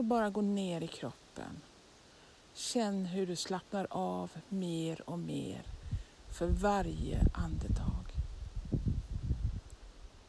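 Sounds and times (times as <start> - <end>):
speech: 0.0 - 1.7, 2.6 - 8.1
soft outdoor wind rustling through leaves on a sunny day: 0.0 - 10.2.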